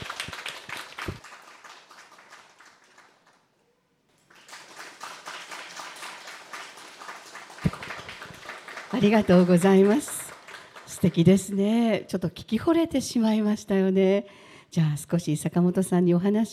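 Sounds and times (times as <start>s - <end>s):
crowd applauding a singer in a city hall lobby in Japan: 0.0s - 11.8s
speech: 9.0s - 10.1s, 11.0s - 16.5s.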